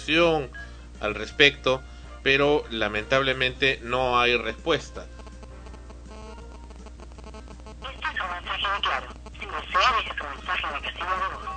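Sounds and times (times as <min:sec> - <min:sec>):
speech: 0:00.0 - 0:05.1, 0:08.7 - 0:11.5
faint constant hum: 0:00.0 - 0:11.5
recorded telephone message for a disconnected line: 0:07.8 - 0:11.5.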